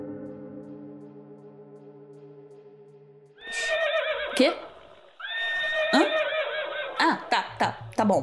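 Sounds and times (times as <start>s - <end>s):
horse neighing: 3.4s - 7.5s
speech: 4.4s - 4.7s, 8.1s - 8.2s.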